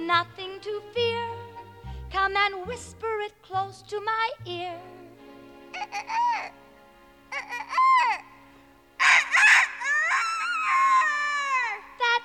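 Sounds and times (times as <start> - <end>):
speech: 0.1 - 1.0, 2.1 - 5.0, 5.8 - 6.6, 7.3 - 8.2
voice imitating a rooster crow: 9.0 - 11.8.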